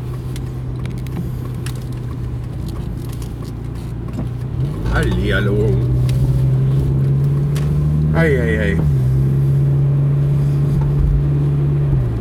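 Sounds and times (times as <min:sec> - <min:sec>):
steady car engine hum: 0:00.0 - 0:12.1
speech: 0:05.0 - 0:06.0, 0:08.2 - 0:08.9.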